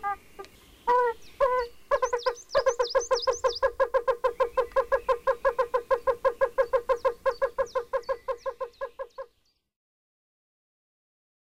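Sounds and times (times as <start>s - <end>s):
yellow-bellied toad Bombina variegata calling: 0.0s - 9.3s
high bird whistles: 1.6s - 3.7s.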